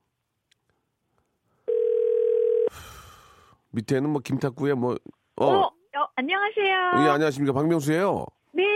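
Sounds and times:
telephone ringback tone while placing a call: 0:01.7 - 0:02.7
speech: 0:03.7 - 0:08.7.

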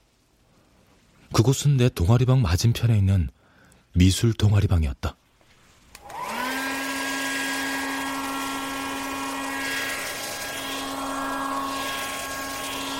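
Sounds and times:
speech: 0:01.4 - 0:05.2
hair dryer blowing with constant high hum: 0:06.0 - 0:12.9.

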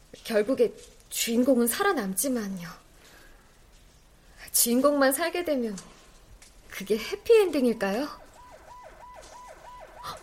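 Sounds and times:
road rumble: 0:00.0 - 0:10.2
speech: 0:00.2 - 0:02.8, 0:04.6 - 0:06.0, 0:06.8 - 0:08.2
emergency vehicle siren wailing: 0:07.8 - 0:10.2.

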